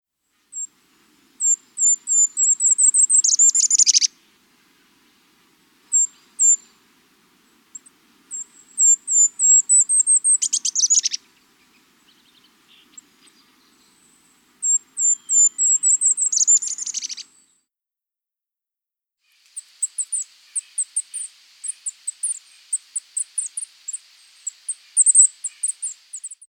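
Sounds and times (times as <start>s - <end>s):
Golden-crowned Kinglet calling: 1.4s - 5.0s, 7.8s - 17.4s, 19.6s - 26.4s.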